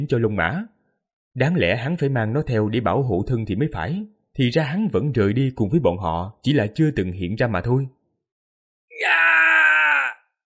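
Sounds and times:
speech: 0.0 - 0.8, 1.4 - 8.0
agonized scream on a battlefield: 8.9 - 10.3.

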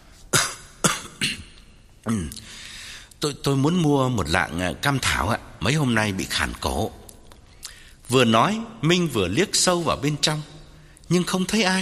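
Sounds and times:
man fake coughing: 0.3 - 2.5
speech: 2.0 - 2.6, 3.2 - 7.0, 8.1 - 11.8.

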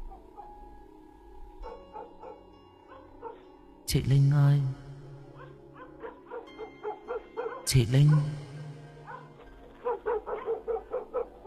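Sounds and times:
yellow dog growling and barking: 1.6 - 3.5, 5.3 - 11.4
speech: 3.9 - 4.8, 7.7 - 8.5.

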